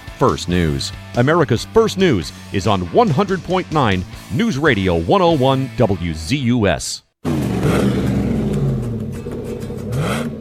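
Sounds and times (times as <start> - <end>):
speech: 0.2 - 7.4
truck engine with customized dual exhaust revving: 7.2 - 10.3.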